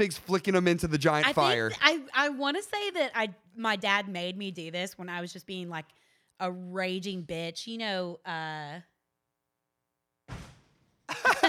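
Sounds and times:
speech: 0.0 - 8.9
door slamming shut: 10.3 - 10.7.

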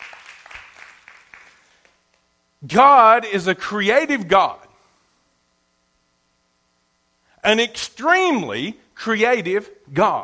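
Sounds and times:
audience clapping hands: 0.0 - 1.8
speech: 2.6 - 4.6, 7.4 - 10.2.

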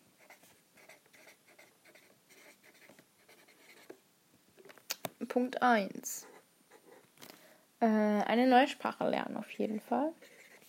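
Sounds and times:
pen writing on paper: 0.2 - 4.0, 10.2 - 10.6
speech: 5.3 - 6.3, 7.8 - 10.4.

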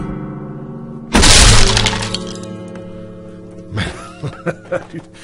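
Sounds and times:
acoustic guitar smashed by a foot: 1.1 - 2.7
laughter: 3.8 - 5.1.

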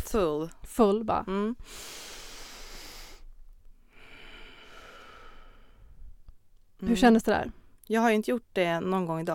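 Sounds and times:
speech: 0.1 - 2.1, 6.8 - 9.3
deep full breath drawn in: 1.6 - 6.2.

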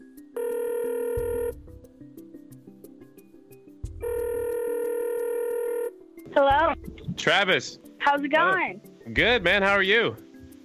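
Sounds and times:
electronic ringing tones on a phone line while dialing a call: 0.4 - 1.6, 4.0 - 6.0
speech: 6.4 - 10.2.

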